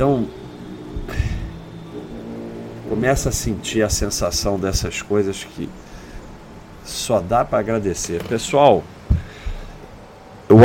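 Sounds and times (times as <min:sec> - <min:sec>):
speech: 0:00.0 - 0:00.4, 0:03.0 - 0:05.9, 0:06.9 - 0:08.9
motorcycle engine passing by: 0:00.0 - 0:04.9
steady low hum: 0:00.0 - 0:10.6.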